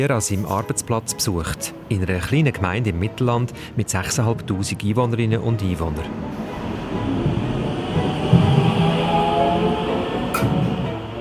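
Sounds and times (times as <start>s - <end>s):
speech: 0.0s - 6.6s
rail car rumbling on a train ride: 5.5s - 11.1s.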